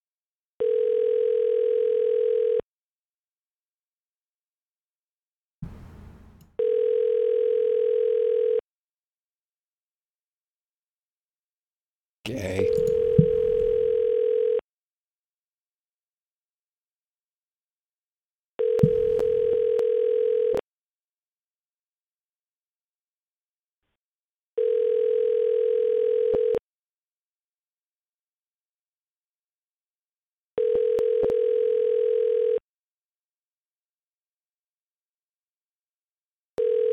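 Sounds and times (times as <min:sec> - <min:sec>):
buzzing telephone ringback tone of a call to a gas station: 0:00.6 - 0:02.6, 0:06.6 - 0:08.6, 0:12.6 - 0:14.6, 0:18.6 - 0:20.6, 0:24.6 - 0:26.6, 0:30.6 - 0:32.6, 0:36.6 - 0:36.9
speech: 0:12.3 - 0:12.9.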